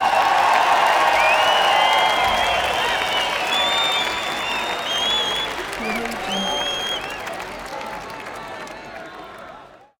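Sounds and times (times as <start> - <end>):
stadium crowd: 0.0 - 9.9.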